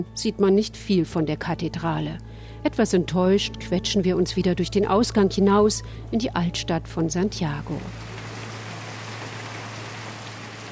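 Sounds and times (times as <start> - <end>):
speech: 0.0 - 8.1
heavy rain pouring: 7.8 - 10.7.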